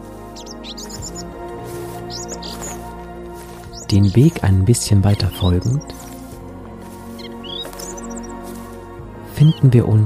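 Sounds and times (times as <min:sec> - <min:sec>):
birds singing and chirping overhead: 0:00.0 - 0:10.0
speech: 0:03.9 - 0:06.0, 0:09.4 - 0:10.0.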